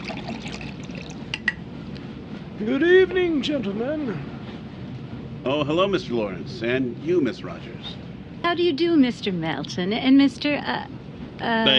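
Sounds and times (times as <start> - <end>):
waiter pouring water into a glass at a restaurant table: 0.0 - 1.5
speech: 2.6 - 4.3, 5.4 - 11.7.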